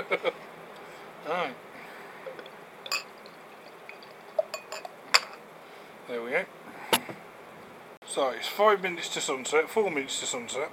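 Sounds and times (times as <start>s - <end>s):
steady hiss: 0.0s - 10.7s
beer poured from a bottle into a glass outdoors in cold weather: 2.3s - 4.9s
light glass clinks: 2.9s - 5.4s
speech: 8.2s - 10.7s.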